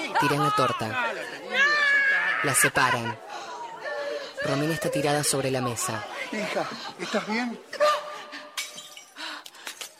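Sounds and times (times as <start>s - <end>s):
speech: 0.2s - 1.6s, 2.4s - 3.2s, 4.4s - 7.9s
wine glass breaking as it is stepped on: 8.6s - 9.9s.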